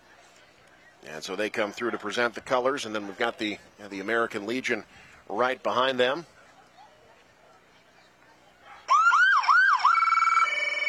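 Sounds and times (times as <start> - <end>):
speech: 1.0 - 6.4
emergency vehicle siren wailing: 8.9 - 10.8.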